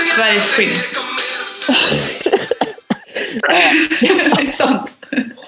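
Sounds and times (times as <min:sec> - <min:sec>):
speech: 0:00.2 - 0:01.1, 0:01.7 - 0:02.5, 0:03.4 - 0:05.2
laughter: 0:01.5 - 0:05.4
person coughing: 0:01.7 - 0:04.7.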